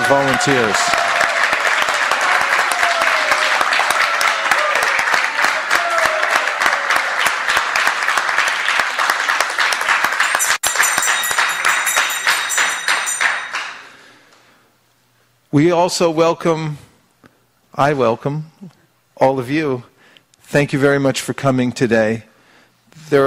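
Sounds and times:
whistles and cheers: 0:00.0 - 0:07.5
large audience at a festival applauding: 0:00.0 - 0:14.0
speech: 0:00.1 - 0:00.9, 0:15.6 - 0:16.9, 0:17.8 - 0:19.9, 0:20.5 - 0:22.3, 0:23.0 - 0:23.2.

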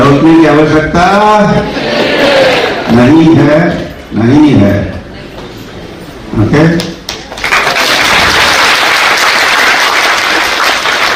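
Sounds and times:
speech: 0:00.2 - 0:01.8, 0:02.9 - 0:05.0, 0:06.4 - 0:06.9
audience clapping in welcome: 0:06.8 - 0:11.1.

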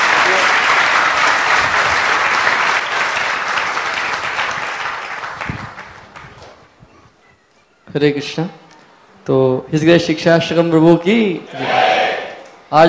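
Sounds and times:
audience applauding at a devotional gathering: 0:00.0 - 0:06.6
speech: 0:07.9 - 0:08.6, 0:09.3 - 0:11.8.

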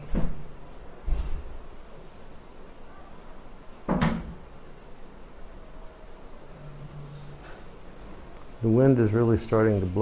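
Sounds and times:
wooden door being pushed shut: 0:03.8 - 0:04.4
speech: 0:08.6 - 0:09.9.

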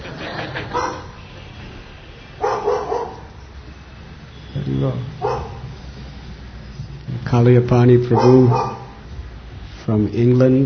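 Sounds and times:
laughter: 0:00.0 - 0:01.3
steady hum: 0:00.0 - 0:09.8
dog barking: 0:00.7 - 0:01.2, 0:02.4 - 0:03.4, 0:05.2 - 0:05.7, 0:08.1 - 0:09.0
speech: 0:07.3 - 0:08.7, 0:09.9 - 0:10.6.

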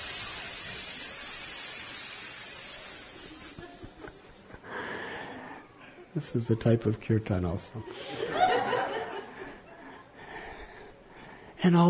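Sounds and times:
hundreds of snakes in silos hissing: 0:00.0 - 0:04.7
laughter: 0:03.4 - 0:04.7, 0:07.8 - 0:10.2
speech: 0:06.2 - 0:08.2, 0:11.6 - 0:11.8.

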